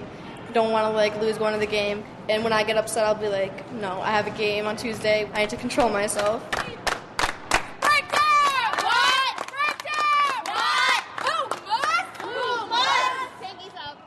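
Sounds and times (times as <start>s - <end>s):
speech: 0.5s - 6.8s
sharp claps: 5.8s - 12.4s
high school basketball team shouting a pregame chant in unison: 10.0s - 13.5s.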